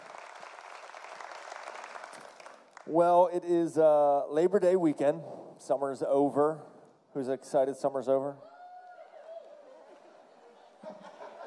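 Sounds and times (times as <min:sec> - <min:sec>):
church audience applauding: 0:00.0 - 0:03.0
speech: 0:02.9 - 0:08.5
laughter: 0:09.5 - 0:11.4.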